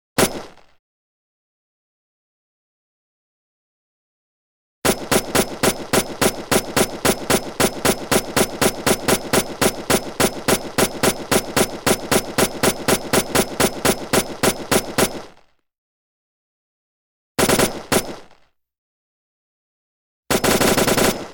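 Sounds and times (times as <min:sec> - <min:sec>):
M-1 automatic weapon firing: 0:04.9 - 0:15.4, 0:20.3 - 0:21.3.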